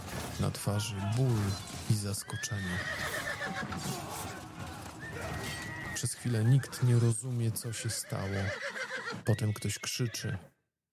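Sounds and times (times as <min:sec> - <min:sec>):
speech: 0:00.4 - 0:04.4, 0:05.2 - 0:10.6
horse neighing as horses rear: 0:02.2 - 0:10.1.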